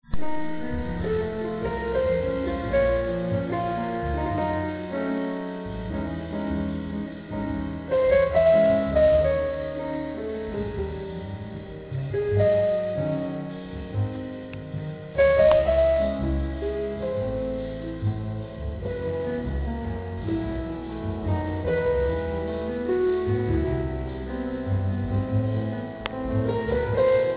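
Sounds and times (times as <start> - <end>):
chamber jazz trio playing in a church: 0.0 - 27.3.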